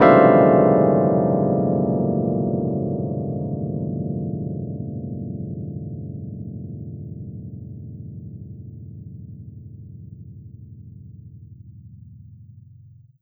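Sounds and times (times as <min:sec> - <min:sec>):
electric piano: 0:00.0 - 0:08.9.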